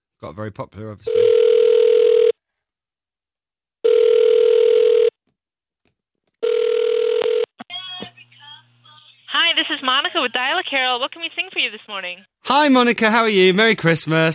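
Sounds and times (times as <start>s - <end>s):
speech: 0.2s - 1.3s, 9.8s - 14.3s
telephone ringback tone heard by a caller waiting in a phone queue: 1.2s - 2.3s, 3.8s - 5.1s, 6.4s - 7.5s.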